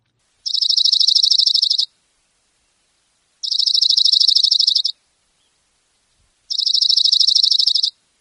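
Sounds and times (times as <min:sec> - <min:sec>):
Oregon Junco giving high dry rapid trills: 0:00.4 - 0:01.9, 0:03.4 - 0:08.0.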